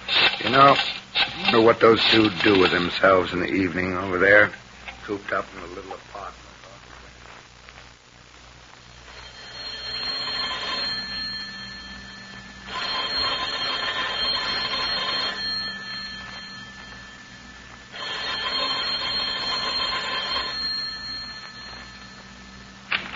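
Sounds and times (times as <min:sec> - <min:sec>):
speech: 0:00.5 - 0:00.9, 0:01.5 - 0:06.5
old-fashioned telephone ringing in jangling bell bursts: 0:09.0 - 0:23.1.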